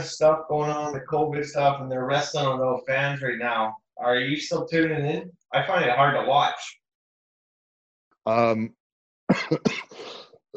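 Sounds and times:
speech: 0:00.0 - 0:06.8, 0:08.2 - 0:10.2
drawn-out voiced throat clearing: 0:09.3 - 0:10.2
harsh breathy coughs: 0:09.3 - 0:10.2.

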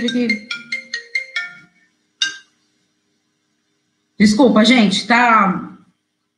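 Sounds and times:
speech: 0:00.0 - 0:00.5, 0:04.2 - 0:05.7
mobile phone ringtone: 0:00.0 - 0:02.5.

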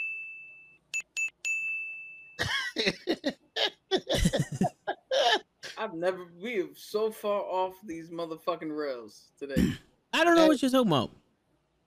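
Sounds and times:
small bell ringing: 0:00.0 - 0:02.4
speech: 0:02.4 - 0:03.4, 0:05.9 - 0:11.2
people laughing: 0:02.4 - 0:05.4.

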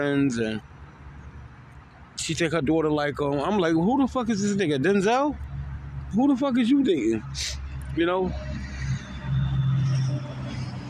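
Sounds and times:
speech: 0:00.0 - 0:00.7, 0:02.3 - 0:05.5, 0:06.1 - 0:08.5
truck engine rumbling passing outside: 0:00.0 - 0:10.8.

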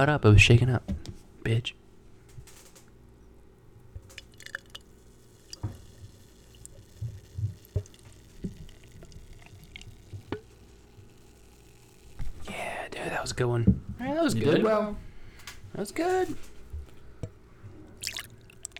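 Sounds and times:
speech: 0:00.0 - 0:01.8, 0:13.3 - 0:15.1, 0:15.8 - 0:16.5
low steady hum: 0:00.0 - 0:18.7
dripping: 0:04.0 - 0:12.2, 0:17.9 - 0:18.7
dry stout beer pouring into a glass: 0:04.0 - 0:12.2, 0:17.9 - 0:18.7.

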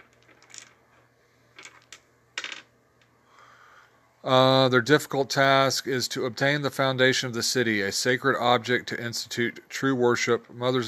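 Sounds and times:
dice clattering and tumbling across a tabletop: 0:00.0 - 0:02.7
speech: 0:04.2 - 0:10.8.

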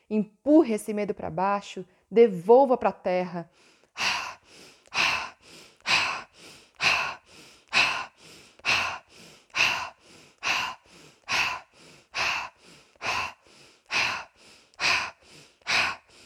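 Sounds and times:
speech: 0:00.1 - 0:04.1
forceful deep breathing during a guided breathing exercise: 0:03.5 - 0:16.2.

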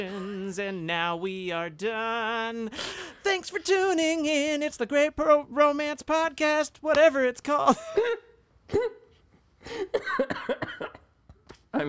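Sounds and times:
speech: 0:00.0 - 0:09.0, 0:09.6 - 0:11.0
person coughing while laughing: 0:07.7 - 0:11.8.

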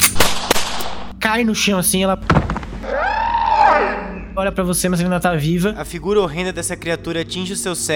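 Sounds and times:
pistol gunshots: 0:00.0 - 0:01.1
speech: 0:01.2 - 0:03.0, 0:03.8 - 0:07.9.

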